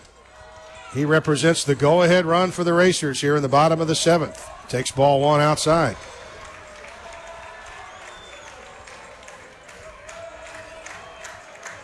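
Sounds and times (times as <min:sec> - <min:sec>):
large baseball crowd cheering and roaring: 0:00.0 - 0:11.8
speech: 0:00.9 - 0:06.2
scattered shouts in baseball crowd: 0:03.8 - 0:11.8
scattered clapping in baseball crowd: 0:05.4 - 0:11.8.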